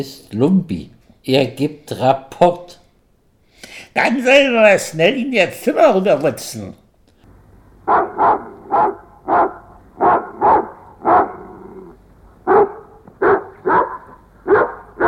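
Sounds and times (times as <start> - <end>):
speech: 0.0 - 2.8, 4.0 - 6.8, 7.9 - 9.5
dog barking: 7.9 - 15.0.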